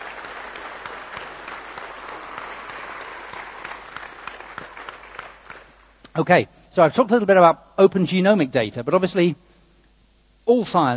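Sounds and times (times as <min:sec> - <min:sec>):
audience applauding: 0:00.0 - 0:05.9
speech: 0:06.2 - 0:09.4, 0:10.5 - 0:10.9.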